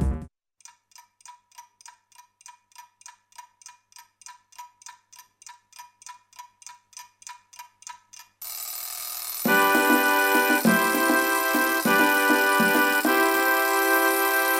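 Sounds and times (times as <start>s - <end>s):
clock ticking: 0.6s - 14.5s
alarm clock ringing: 8.4s - 14.5s
musical melody: 9.5s - 14.5s.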